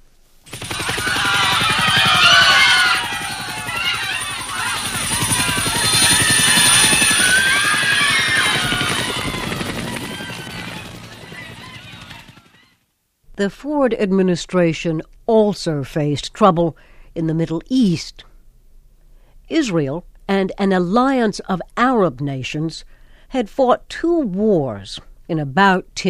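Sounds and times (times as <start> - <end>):
overloaded American military helicopter taking off from an embassy roof: 0.5 - 12.8
people shouting: 0.6 - 12.4
speech: 13.4 - 18.3, 19.5 - 26.0.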